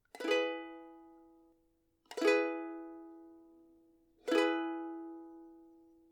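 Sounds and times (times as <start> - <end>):
ukulele E chord: 0.2 - 1.4, 2.1 - 3.4, 4.3 - 5.6.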